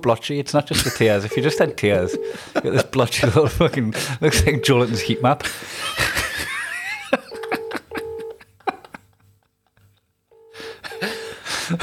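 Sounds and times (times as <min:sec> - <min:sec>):
speech: 0:00.0 - 0:06.2
people laughing: 0:00.7 - 0:03.6, 0:05.4 - 0:09.9
phone ringback tone in short double bursts: 0:01.3 - 0:02.4, 0:04.4 - 0:05.4, 0:07.3 - 0:08.4, 0:10.3 - 0:11.4.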